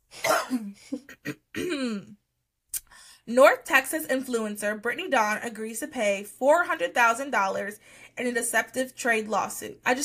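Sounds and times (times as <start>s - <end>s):
person coughing: 0.1s - 2.2s
throat clearing: 0.2s - 2.2s
speech: 0.5s - 2.2s, 3.3s - 10.0s
sharp exhale: 2.8s - 3.2s.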